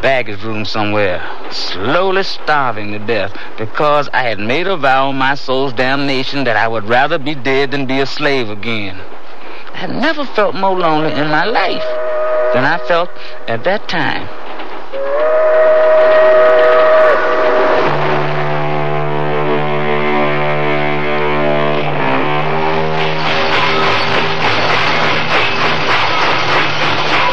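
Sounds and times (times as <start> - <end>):
speech: 0.0 - 9.2, 9.8 - 14.4
rumble of rolling freight train cars slowing to a stop: 0.0 - 27.3
freight train whistle: 11.0 - 13.6, 14.9 - 24.3.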